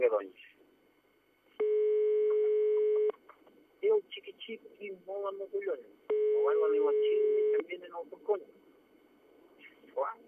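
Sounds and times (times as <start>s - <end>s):
faint noise: 0.0s - 10.2s
telephone line tone while a call is placed: 1.6s - 3.1s, 6.1s - 7.6s
speech: 4.9s - 8.6s.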